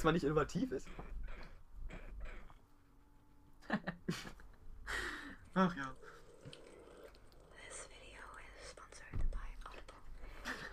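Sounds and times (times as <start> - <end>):
speech: 0.0 - 2.0, 3.7 - 5.0, 5.6 - 6.1
laughter: 3.6 - 5.0
soft ASMR whispering from a video being played: 7.4 - 10.2.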